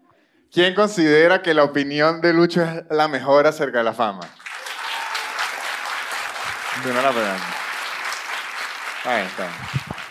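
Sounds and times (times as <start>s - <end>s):
speech: 0.5s - 4.4s, 6.8s - 7.6s, 9.0s - 9.9s
crowd applause: 4.3s - 10.0s.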